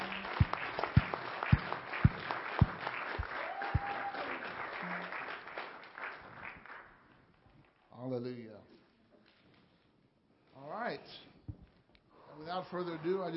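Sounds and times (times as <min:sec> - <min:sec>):
crowd applauding: 0:00.0 - 0:07.2, 0:12.3 - 0:13.3
person whooping: 0:03.3 - 0:05.1
speech: 0:12.6 - 0:13.3.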